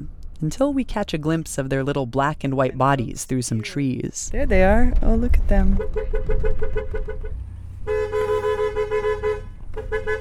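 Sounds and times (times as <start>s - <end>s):
low car engine rumble: 0.0s - 10.2s
speech: 0.4s - 8.3s, 9.9s - 10.2s
car horn honking to herd goats: 5.7s - 10.2s.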